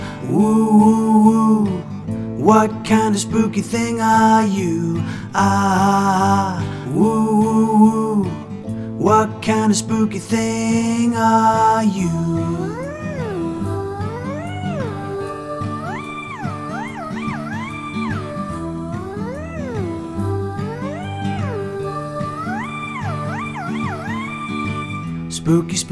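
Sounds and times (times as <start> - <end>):
speech: 0.2 - 0.8, 2.4 - 8.4, 9.0 - 12.8, 25.5 - 25.8
musical backing: 6.0 - 25.8
cat meowing: 12.6 - 25.2.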